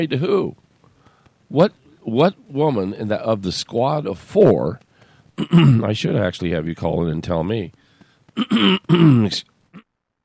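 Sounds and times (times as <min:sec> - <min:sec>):
speech: 0:00.0 - 0:00.6, 0:01.5 - 0:07.8, 0:08.4 - 0:09.5
two-part throat clearing: 0:05.4 - 0:05.8, 0:08.4 - 0:09.9.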